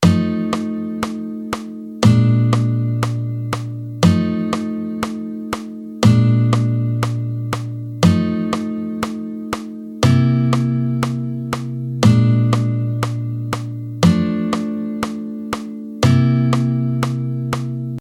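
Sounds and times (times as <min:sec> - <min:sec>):
jazz guitar playing shell voicing chords: 0:00.0 - 0:17.9.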